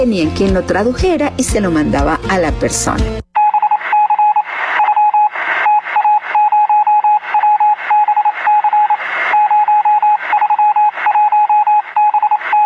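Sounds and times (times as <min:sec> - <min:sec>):
speech: 0:00.0 - 0:03.3
telegraph Morse code beeping: 0:03.4 - 0:12.6
bursts of radio-like static: 0:03.5 - 0:12.6.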